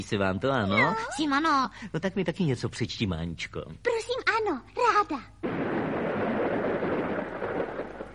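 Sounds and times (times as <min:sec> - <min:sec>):
speech: 0:00.0 - 0:05.3
dense rush of rain: 0:05.4 - 0:08.1
low thunder rumbling: 0:05.4 - 0:08.1.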